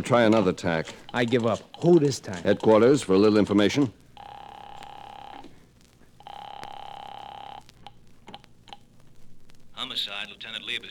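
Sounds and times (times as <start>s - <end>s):
speech: 0.0s - 4.0s
steady telephone tone: 4.2s - 5.6s, 6.2s - 8.9s.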